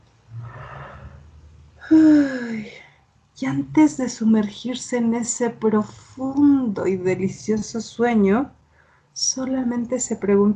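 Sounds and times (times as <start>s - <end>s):
person acting out a yawn: 1.8s - 2.5s
speech: 1.9s - 2.8s, 3.4s - 8.6s, 9.2s - 10.5s.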